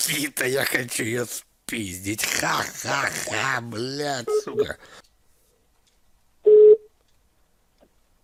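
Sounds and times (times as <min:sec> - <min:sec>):
speech: 0:00.0 - 0:05.0
short mid-pitched telephone tone on a line: 0:06.5 - 0:06.9.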